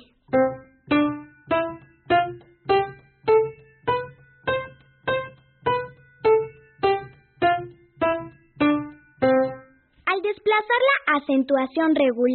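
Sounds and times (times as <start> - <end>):
musical scale of plucked-sounding notes stepping upward: 0.0 - 9.8
speech: 10.6 - 12.3.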